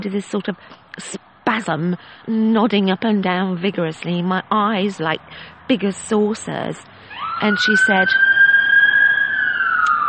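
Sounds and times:
speech: 0:00.0 - 0:08.3
emergency vehicle siren wailing outside: 0:06.5 - 0:10.0.

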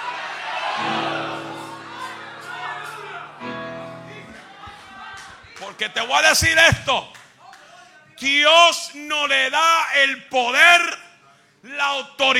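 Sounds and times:
church audience shouting and cheering in response to a preacher: 0:00.0 - 0:07.1
speech: 0:05.8 - 0:07.2, 0:08.2 - 0:11.0, 0:11.6 - 0:12.3.

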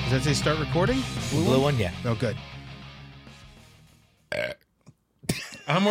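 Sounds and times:
speech: 0:00.1 - 0:02.5
small low burp: 0:04.3 - 0:04.8.

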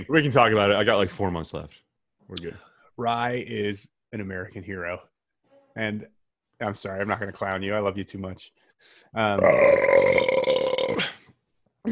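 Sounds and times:
speech: 0:00.0 - 0:05.1, 0:05.8 - 0:11.1
loud drawn-out burp: 0:09.4 - 0:11.3.

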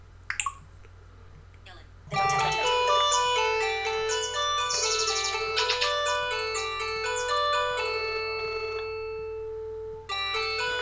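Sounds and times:
home phone ringing with a bright electronic melodic ringtone: 0:02.1 - 0:10.7.

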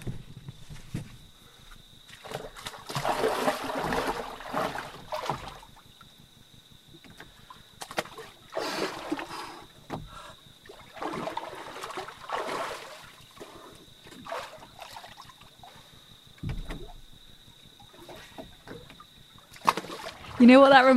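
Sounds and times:
person splashing into a river to wash off: 0:02.1 - 0:06.0, 0:07.3 - 0:17.1, 0:17.8 - 0:20.9
speech: 0:20.4 - 0:20.9.

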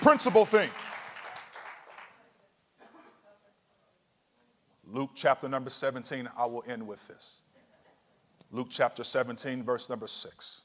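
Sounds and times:
speech: 0:00.0 - 0:00.8, 0:04.9 - 0:07.4, 0:08.5 - 0:10.6
audience clapping hands: 0:00.0 - 0:02.3.

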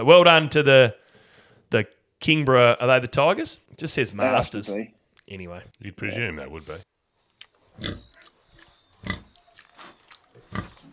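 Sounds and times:
speech: 0:00.0 - 0:01.0, 0:01.7 - 0:06.9, 0:07.8 - 0:08.1
pigs snuffling and snorting: 0:07.7 - 0:10.9
pigs oinking and grunting: 0:07.8 - 0:08.3, 0:09.0 - 0:10.9.

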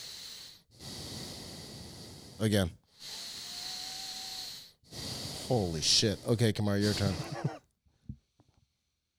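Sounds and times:
loud hissing breaths drawn in through the nose: 0:00.0 - 0:07.2
speech: 0:02.4 - 0:03.2, 0:05.5 - 0:07.5.

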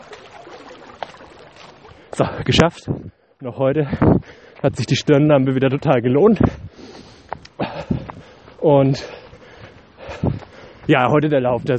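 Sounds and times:
river babbling: 0:00.0 - 0:02.6
speech: 0:02.2 - 0:06.6, 0:08.6 - 0:09.2, 0:10.9 - 0:11.7.

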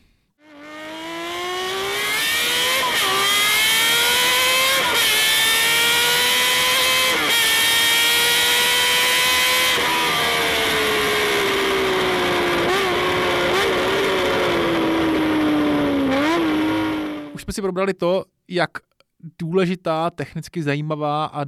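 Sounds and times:
six-cylinder Honda CBX 1000 motorcycle engine revving: 0:00.4 - 0:17.4
speech: 0:17.6 - 0:21.4.

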